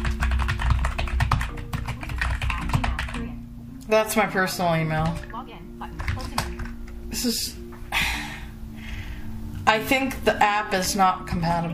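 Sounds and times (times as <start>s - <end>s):
typing an email on a computer keyboard: 0.0s - 3.4s, 5.0s - 7.0s
speech: 3.9s - 5.9s, 7.2s - 7.6s, 9.7s - 11.7s.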